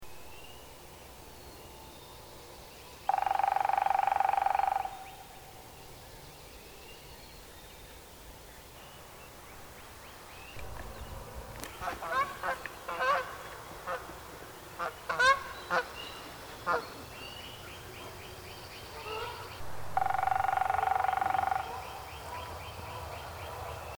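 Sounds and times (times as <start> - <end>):
Red-bellied Woodpecker Melanerpes carolinus: 3.0 - 5.8, 10.5 - 23.9.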